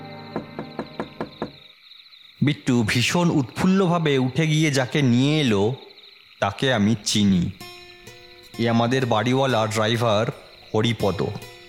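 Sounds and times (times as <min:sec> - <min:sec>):
sharp raps knocking on a room door: 0:00.3 - 0:01.6
speech: 0:02.4 - 0:07.7, 0:08.6 - 0:11.5.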